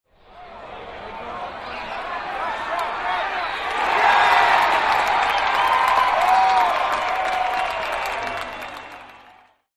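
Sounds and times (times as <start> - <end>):
medium crowd reaction: 0.9 - 9.6.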